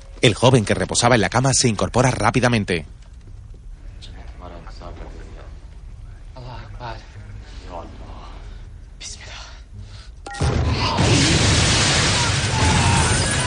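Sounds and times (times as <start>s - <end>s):
speech: 0.2s - 3.0s
bomb blast: 10.4s - 13.4s
roaring rumble of a building collapsing: 10.5s - 13.4s.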